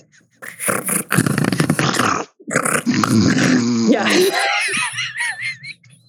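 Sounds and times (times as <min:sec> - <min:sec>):
person breathing: 0:00.0 - 0:01.8
person imitating a lion roar: 0:00.4 - 0:04.6
speech: 0:03.1 - 0:03.4, 0:04.0 - 0:04.5
laughter: 0:03.9 - 0:06.0.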